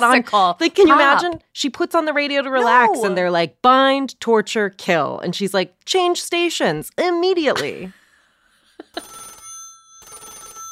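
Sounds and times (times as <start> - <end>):
speech: 0.0 - 8.0, 9.0 - 9.2
landline telephone ringing with a rattling bell: 8.9 - 10.7.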